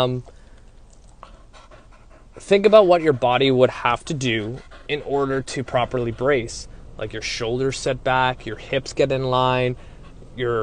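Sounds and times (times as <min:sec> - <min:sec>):
speech: 0:00.0 - 0:00.4, 0:02.4 - 0:10.6
female dog panting inside a car: 0:00.8 - 0:10.6.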